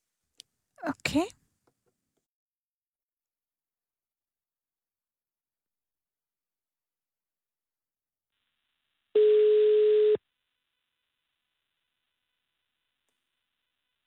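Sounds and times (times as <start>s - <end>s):
speech: 0.8s - 1.4s
telephone line tones during a phone call: 9.2s - 10.2s.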